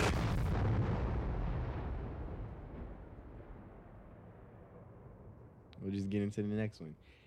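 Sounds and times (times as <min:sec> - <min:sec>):
heavy explosion with rolling rumble: 0:00.0 - 0:05.4
speech: 0:05.9 - 0:07.2.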